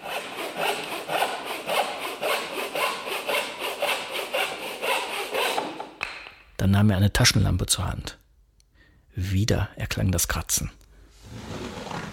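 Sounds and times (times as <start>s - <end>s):
hand saw cutting through wooden floorboard: 0.0s - 6.0s
speech: 6.6s - 8.2s, 9.2s - 11.4s.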